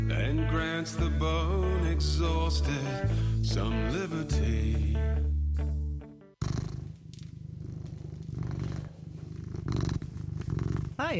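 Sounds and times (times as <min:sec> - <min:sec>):
speech: 0:00.1 - 0:05.7
cat purring: 0:06.4 - 0:11.1.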